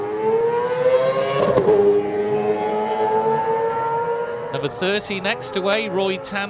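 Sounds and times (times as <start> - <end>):
Honda racing motorbike engine revving hard as it sets off: 0.0 - 6.4
speech: 1.7 - 2.0, 4.6 - 6.4.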